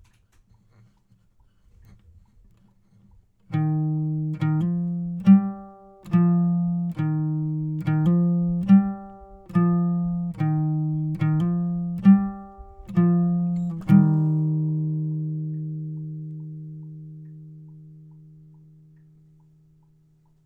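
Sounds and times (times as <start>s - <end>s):
guitar outro: 3.6s - 19.4s.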